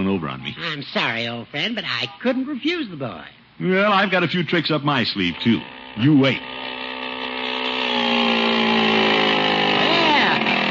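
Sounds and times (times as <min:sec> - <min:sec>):
speech: 0:00.1 - 0:06.8
small motor fitted to a bicycle droning: 0:05.0 - 0:10.6.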